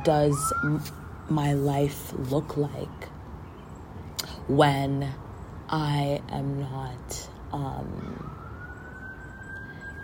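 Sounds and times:
siren wailing outdoors: 0.0s - 1.6s, 7.8s - 10.0s
speech: 0.0s - 3.2s, 4.5s - 8.4s.

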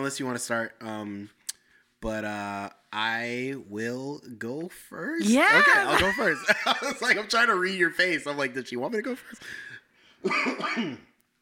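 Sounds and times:
speech: 0.0s - 1.4s, 2.0s - 11.1s
laughter: 5.2s - 7.4s
harsh raspy cough caused by allergies: 10.2s - 11.2s.

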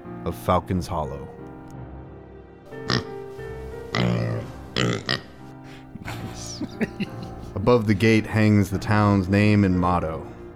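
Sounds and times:
speech: 0.2s - 1.4s, 6.7s - 10.4s
small piglet boar oinking and grunting: 2.8s - 3.2s, 3.8s - 7.1s
laughter: 5.7s - 8.2s.

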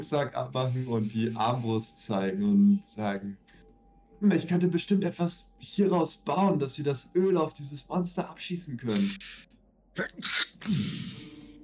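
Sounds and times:
speech: 0.0s - 3.5s, 4.2s - 11.3s
person sneezing: 10.0s - 11.4s.

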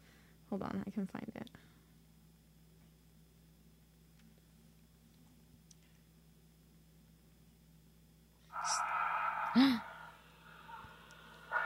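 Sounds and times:
speech: 0.5s - 1.6s
man breathing heavily on a recorded phone call: 8.8s - 11.6s.

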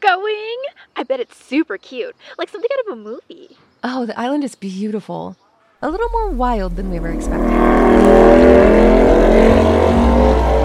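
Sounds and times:
speech: 0.0s - 10.6s
car driving past: 6.8s - 10.6s.

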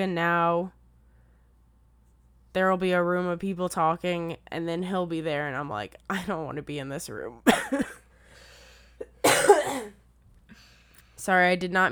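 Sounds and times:
speech: 0.0s - 0.8s, 2.6s - 8.0s, 11.2s - 11.9s
person coughing harshly: 7.5s - 8.1s, 9.0s - 10.0s.

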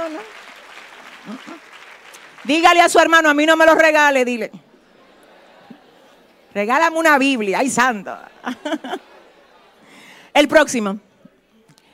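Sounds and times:
audience applauding: 0.0s - 3.9s
speech: 1.2s - 1.7s, 2.4s - 4.6s, 6.6s - 9.1s, 10.4s - 11.1s
laughter: 4.7s - 6.5s, 7.9s - 9.9s.

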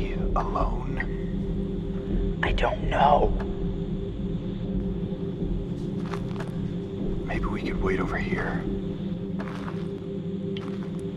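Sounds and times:
speech: 0.0s - 1.2s, 2.1s - 3.5s, 7.4s - 8.8s
steady low hum and rumble: 0.0s - 11.1s
soft footsteps: 5.6s - 7.1s, 9.2s - 11.1s.

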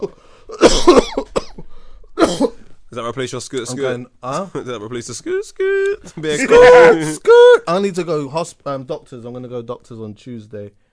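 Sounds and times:
speech: 0.0s - 1.3s, 2.3s - 10.8s
person coughing hard: 0.5s - 2.7s.

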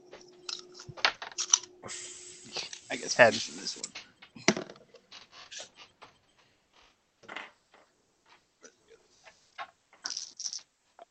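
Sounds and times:
low steady hum: 0.0s - 9.6s
speech: 3.0s - 3.9s
dice rolling and rattling across a table: 10.0s - 10.7s.

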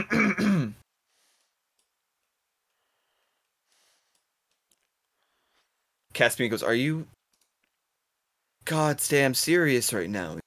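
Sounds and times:
person clearing throat: 0.0s - 0.8s
speech: 6.2s - 7.2s, 8.7s - 10.4s.

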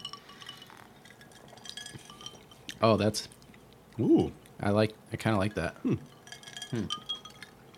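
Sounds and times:
drinking glasses clinking in a toast: 0.0s - 2.6s, 5.4s - 7.7s
speech: 2.8s - 3.4s, 4.0s - 7.0s.

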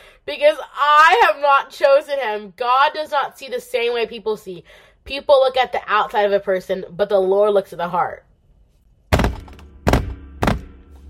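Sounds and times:
speech: 0.2s - 8.3s
hand banging on a desk: 9.1s - 10.8s.

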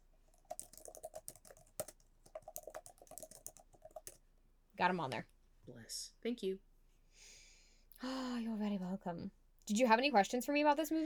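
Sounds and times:
typing on a computer keyboard: 0.3s - 4.2s
speech: 4.8s - 7.4s, 8.0s - 11.0s.

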